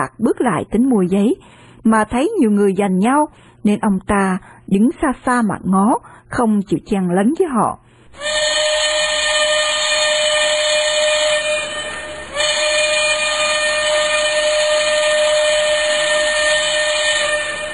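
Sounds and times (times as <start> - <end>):
speech: 0.0 - 8.4
steam train blowing its whistle: 8.1 - 17.7.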